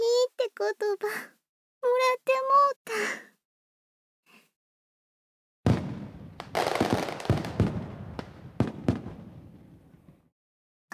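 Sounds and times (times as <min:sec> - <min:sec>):
speech: 0:00.6 - 0:03.3
fireworks exploding: 0:05.7 - 0:10.3.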